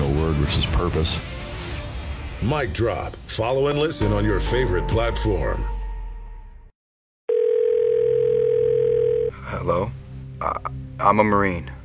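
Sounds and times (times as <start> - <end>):
speech: 0.4 - 1.4, 2.4 - 5.8, 9.6 - 11.8
telephone dial tone before a call: 7.3 - 9.3.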